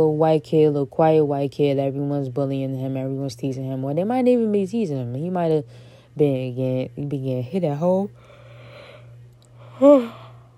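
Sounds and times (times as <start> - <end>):
speech: 0.0 - 8.3, 9.8 - 10.2
faint steady hum: 0.0 - 10.5
person yawning: 9.7 - 10.4.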